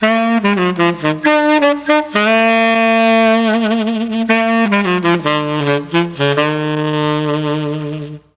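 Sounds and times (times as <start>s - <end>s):
mellotron foxtrot sax note E4: 0.0s - 8.3s.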